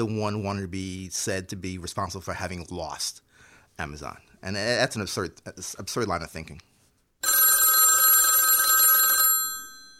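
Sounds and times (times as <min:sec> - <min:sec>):
speech: 0:00.0 - 0:06.7
telephone bell ringing: 0:07.2 - 0:09.9.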